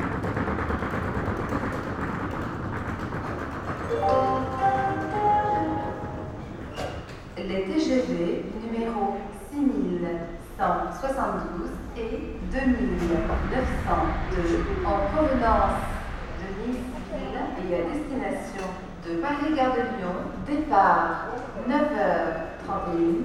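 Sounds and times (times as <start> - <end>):
suitcase rolling in Avignon train station: 0.0 - 7.4
woman talking in Avignon train station: 7.4 - 23.2
dense low rumble in train station hall: 10.5 - 19.3.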